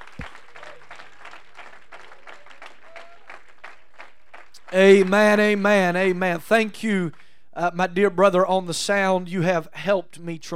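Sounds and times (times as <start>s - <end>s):
church congregation applauding during a worship service: 0.0s - 7.3s
speech: 4.7s - 10.5s.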